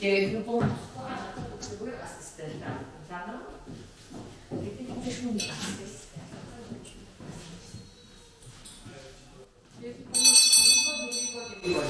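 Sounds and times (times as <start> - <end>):
speech: 0.0 - 3.7, 4.9 - 5.9
small bell ringing to end a school lesson: 10.2 - 11.8.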